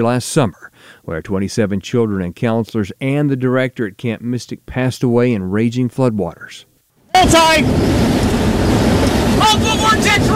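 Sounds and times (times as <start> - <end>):
speech: 0.0 - 8.8, 9.4 - 10.3
severe storm wind roaring: 7.1 - 10.3
driving rain in a severe storm: 7.2 - 10.3.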